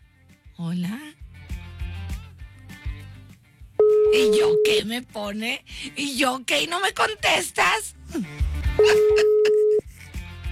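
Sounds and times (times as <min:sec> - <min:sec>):
speech: 0:00.6 - 0:01.2, 0:04.1 - 0:09.3
telephone tone while a phone number is dialed: 0:03.8 - 0:04.8, 0:08.8 - 0:09.8.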